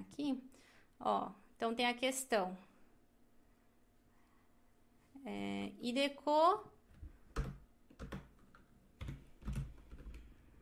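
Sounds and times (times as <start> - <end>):
speech: 0.0 - 2.7, 5.2 - 6.7
typing on a computer keyboard without a Portuguese layout: 7.3 - 10.3.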